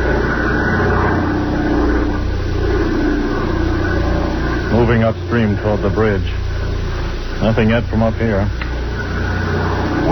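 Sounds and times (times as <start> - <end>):
airplane engine flying overhead: 0.0 - 10.1
speech: 4.9 - 6.4, 7.4 - 8.6.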